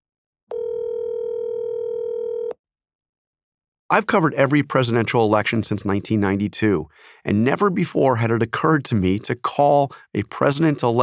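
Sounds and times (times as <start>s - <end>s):
telephone ringing with a steady electronic tone: 0.5s - 2.6s
speech: 3.9s - 11.0s.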